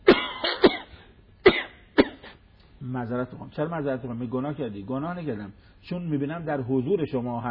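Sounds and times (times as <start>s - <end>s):
sharp dry coughs: 0.0s - 2.4s
speech: 2.8s - 7.5s.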